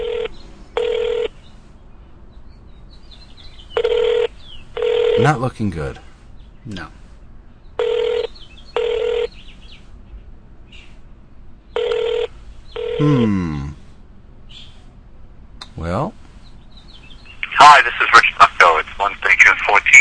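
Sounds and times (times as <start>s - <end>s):
telephone ringback tone from a call to a work phone in New Hampshire: 0.0s - 1.3s, 3.8s - 5.2s, 7.8s - 9.3s, 11.8s - 13.2s
speech: 5.2s - 7.0s, 13.0s - 13.8s, 15.8s - 16.2s, 17.8s - 20.0s.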